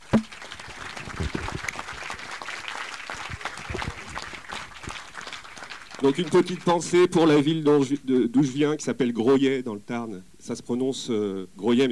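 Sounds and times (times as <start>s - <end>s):
audience applause: 0.0s - 7.1s
speech: 6.0s - 11.9s.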